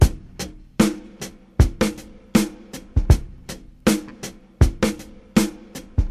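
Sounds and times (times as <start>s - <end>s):
breakbeat drum loop with kick tuned to G sharp: 1.6s - 6.0s.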